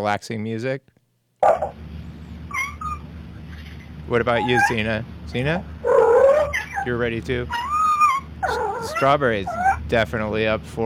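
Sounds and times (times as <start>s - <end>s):
speech: 0.0s - 1.7s, 4.1s - 5.9s, 6.8s - 7.6s, 8.4s - 10.8s
house cats meowing: 5.9s - 9.8s.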